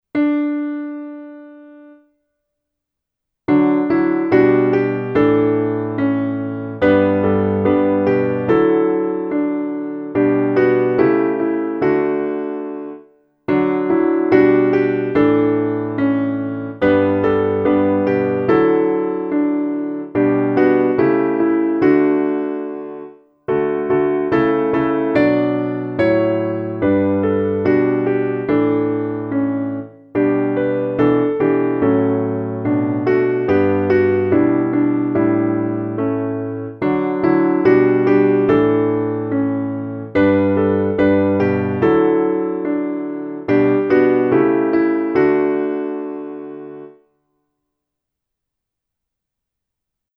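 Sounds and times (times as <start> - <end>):
piano piece: 0.1 - 2.1, 3.5 - 47.1.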